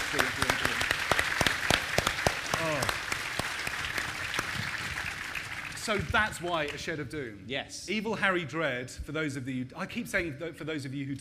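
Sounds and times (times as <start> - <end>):
audience applause: 0.0 - 6.9
speech: 0.1 - 0.6, 5.8 - 11.1.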